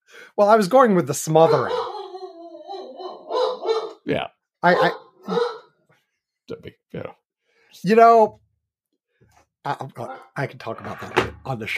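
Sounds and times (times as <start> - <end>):
speech: 0.4 - 2.0, 4.0 - 5.4, 6.5 - 7.2, 7.8 - 8.4, 9.6 - 11.7
dog howling: 1.4 - 4.0
dog barking: 1.4 - 5.8.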